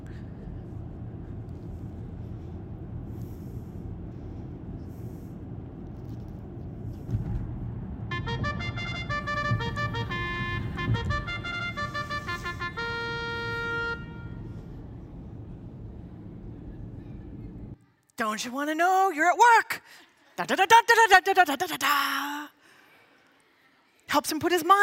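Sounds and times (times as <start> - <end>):
road traffic rumble while driving through Loma Linda: 0.0 - 17.8
car horns honking: 8.1 - 14.7
speech: 18.2 - 22.4, 24.1 - 24.8.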